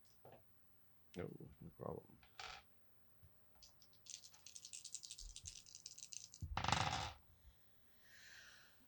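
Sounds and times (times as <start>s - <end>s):
speech: 1.2s - 2.0s
dice rolled for a stamina check in a tabletop game: 3.6s - 7.2s.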